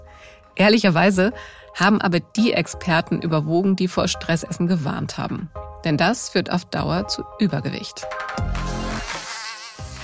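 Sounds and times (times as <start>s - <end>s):
speech: 0.6s - 8.6s
mosquito buzzing: 8.4s - 10.0s.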